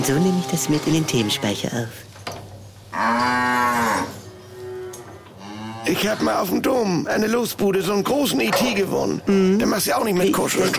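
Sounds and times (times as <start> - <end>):
cow mooing: 0.0 - 1.9, 2.9 - 6.4
speech: 0.0 - 2.1, 5.9 - 10.7.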